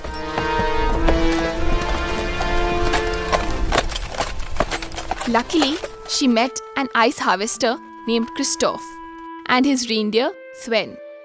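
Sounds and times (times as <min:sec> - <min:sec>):
fierce wind: 0:00.0 - 0:06.1
horses galloping away through snow: 0:00.0 - 0:08.5
sustained tonal backdrop: 0:00.0 - 0:11.2
speech: 0:05.3 - 0:11.0.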